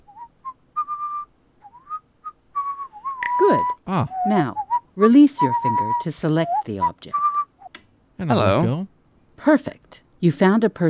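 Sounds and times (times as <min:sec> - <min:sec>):
person whistling a short bright tune: 0:00.0 - 0:02.0, 0:02.6 - 0:07.7
speech: 0:03.5 - 0:07.2, 0:08.2 - 0:10.8.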